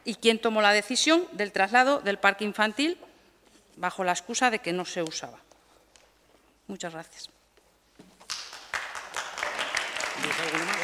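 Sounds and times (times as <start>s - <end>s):
speech: 0.0s - 3.1s, 3.8s - 5.4s, 6.7s - 7.4s, 10.2s - 10.8s
crowd audience applause: 8.3s - 10.8s.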